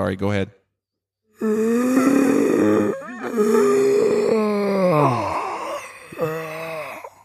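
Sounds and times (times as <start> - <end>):
speech: 0.0 - 0.6, 1.4 - 3.8
person imitating a zombie with guttural groans and moans: 1.4 - 7.2.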